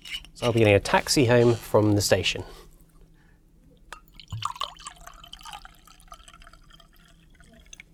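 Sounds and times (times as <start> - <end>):
speech: 0.4 - 2.6
liquid gurgling and dripping into a glass: 3.8 - 7.9
drink pouring into a glass: 4.0 - 7.9.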